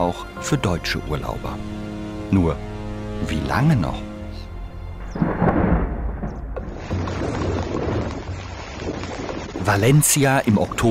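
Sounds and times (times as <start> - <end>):
speech: 0.0 - 4.1, 9.6 - 10.8
deep rumbling thunder: 5.0 - 8.5
heavy torrential rain pouring: 5.2 - 10.8.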